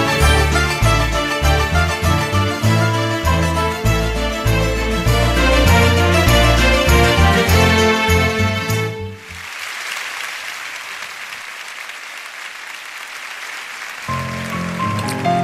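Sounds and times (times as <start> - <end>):
band playing: 0.0 - 9.4
large concert audience applauding a singer: 9.2 - 15.3.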